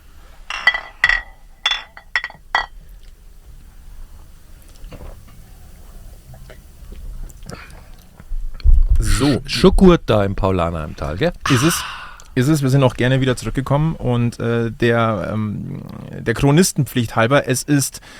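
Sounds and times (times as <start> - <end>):
beer glasses clinking together in a toast at a regulars' table: 0.5 - 2.8
speech: 9.2 - 18.1.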